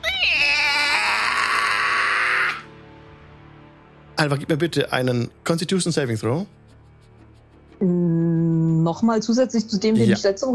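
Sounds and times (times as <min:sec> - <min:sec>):
loud shrill inhuman scream: 0:00.0 - 0:02.7
speech: 0:04.2 - 0:06.6, 0:07.8 - 0:10.5.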